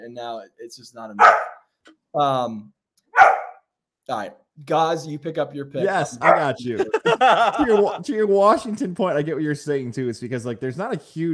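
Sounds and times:
speech: 0.0 - 3.4, 4.1 - 11.3
dog barking and yowling: 1.2 - 1.6, 3.2 - 3.6, 6.2 - 6.6
laughter: 5.8 - 9.0.

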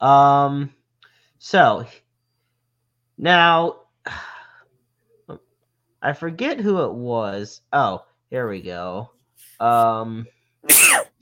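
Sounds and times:
speech: 0.0 - 0.8, 1.4 - 2.0, 3.2 - 4.3, 6.0 - 11.1
person sneezing: 9.4 - 9.8, 10.7 - 11.1.

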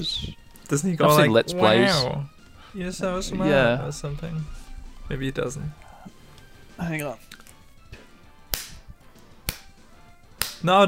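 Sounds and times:
speech: 0.0 - 5.8, 6.8 - 7.4, 10.6 - 10.8
ruler slapping against a palm: 8.5 - 8.9, 9.5 - 9.7, 10.4 - 10.6.

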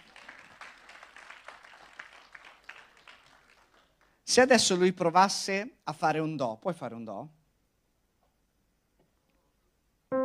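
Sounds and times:
audience applause: 0.0 - 4.2
speech: 4.4 - 7.4.

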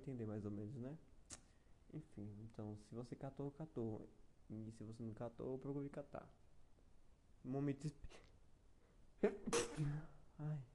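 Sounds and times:
speech: 0.0 - 1.1, 1.9 - 6.4, 7.4 - 8.3, 9.2 - 10.7
single loud sneeze: 9.3 - 10.1.

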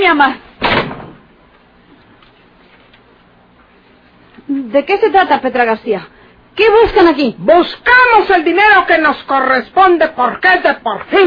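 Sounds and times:
speech: 0.0 - 0.4, 4.7 - 11.2
heavy door slamming shut: 0.6 - 1.3.

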